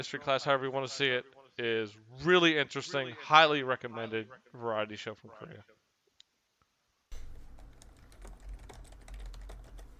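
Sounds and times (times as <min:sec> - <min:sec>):
speech: 0:00.0 - 0:05.8
low hum: 0:07.1 - 0:09.9
typing on a computer keyboard through a microphone on a call: 0:07.1 - 0:09.9.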